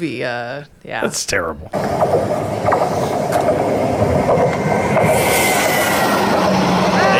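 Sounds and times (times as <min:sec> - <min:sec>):
speech: 0:00.0 - 0:05.5
rhythmic clattering of freight train: 0:00.0 - 0:07.1
freight train sound effect rumbling along the tracks: 0:01.6 - 0:07.1
rising hiss: 0:04.6 - 0:07.1.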